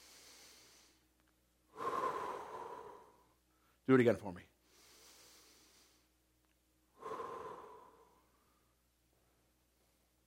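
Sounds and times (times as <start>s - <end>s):
deep soft inhale through the nose: 0.0s - 1.1s, 1.7s - 3.8s, 4.6s - 6.2s, 7.0s - 8.8s
speech: 3.9s - 4.6s.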